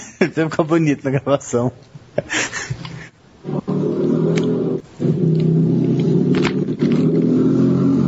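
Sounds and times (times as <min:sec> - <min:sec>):
speech: 0:00.2 - 0:02.6
Harley-Davidson motorcycle engine rumbling past: 0:04.1 - 0:08.0.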